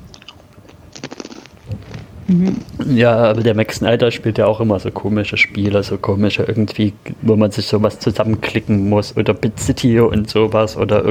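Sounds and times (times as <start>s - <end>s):
soft mouth sounds: 0.0s - 3.0s
crunchy pretzel being chewed: 0.1s - 2.1s
speech: 2.3s - 11.1s.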